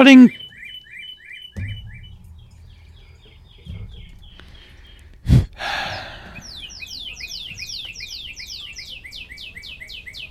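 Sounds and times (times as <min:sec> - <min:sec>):
speech: 0:00.0 - 0:00.4
cardinal singing down-slurred whistles: 0:00.0 - 0:10.2
sharp thump: 0:01.6 - 0:02.9
low rumble: 0:01.6 - 0:07.0.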